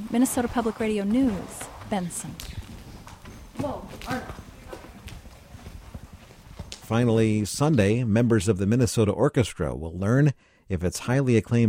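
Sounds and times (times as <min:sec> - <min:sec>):
horse hooves clip-clopping at a walking pace in Benson Minnesota: 0:00.0 - 0:08.0
speech: 0:00.1 - 0:02.6, 0:03.6 - 0:04.4, 0:06.9 - 0:11.6.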